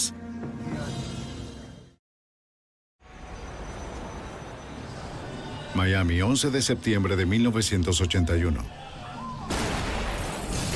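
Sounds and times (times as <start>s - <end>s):
speech: 5.8s - 8.8s
bomb explosion at a consulate: 9.5s - 10.7s.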